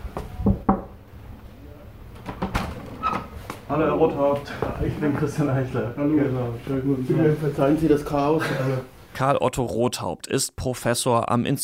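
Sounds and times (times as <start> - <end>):
faint room noise: 0.0 - 11.6
knocking on a wooden office door: 0.2 - 1.0
speech: 3.7 - 11.6.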